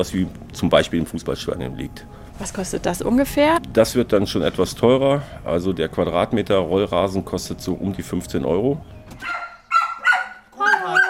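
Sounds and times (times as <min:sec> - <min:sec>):
speech: 0:00.0 - 0:09.3
dog guarding a house barking: 0:09.2 - 0:11.0.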